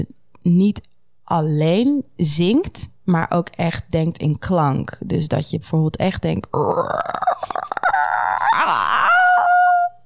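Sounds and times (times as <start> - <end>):
speech: 0.0 - 7.2
voice artist imitating a creaking door: 6.6 - 10.0.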